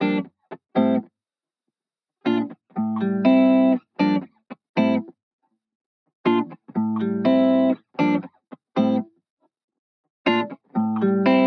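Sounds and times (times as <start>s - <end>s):
dry guitar chords in neo soul style: 0.0s - 1.1s, 2.3s - 5.1s, 6.3s - 9.1s, 10.3s - 11.4s.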